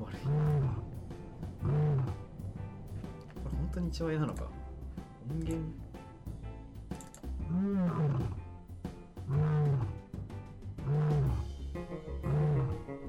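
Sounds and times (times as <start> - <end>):
lion roaring: 0.1 - 2.3, 7.4 - 8.5, 9.3 - 10.1, 10.8 - 11.5, 12.2 - 12.9
speech: 3.7 - 4.7, 5.3 - 5.9.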